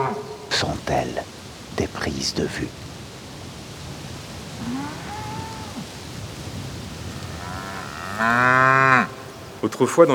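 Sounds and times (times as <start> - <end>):
steady rain-like hiss: 0.0 - 10.1
speech: 0.6 - 2.9, 4.6 - 5.1, 8.2 - 10.1
cows mooing: 4.5 - 9.5.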